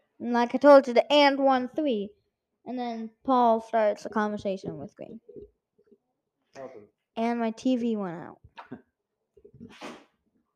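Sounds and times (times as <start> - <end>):
speech: 0.2 - 5.6, 6.6 - 8.8, 9.6 - 10.0
dog sneezing: 9.7 - 10.0.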